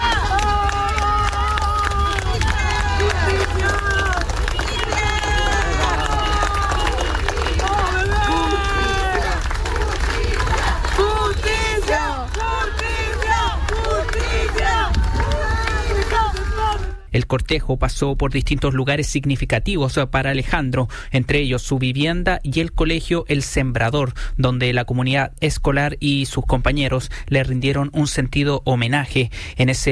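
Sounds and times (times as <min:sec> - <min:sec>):
crowd of mourners shouting and calling out for justice at a funeral procession: 0:00.0 - 0:17.1
low rumble of crowd movement: 0:00.2 - 0:16.9
speech: 0:17.3 - 0:29.9.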